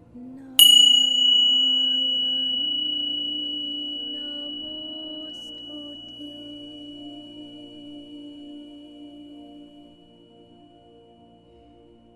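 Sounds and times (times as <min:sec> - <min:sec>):
small bell ringing: 0:00.6 - 0:09.1.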